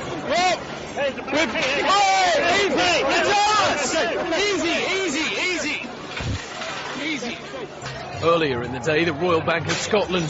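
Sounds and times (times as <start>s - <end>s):
dense crowd of protesters roaring and yelling against a police line: 0.0s - 9.4s
speech: 1.0s - 5.2s, 8.2s - 10.2s.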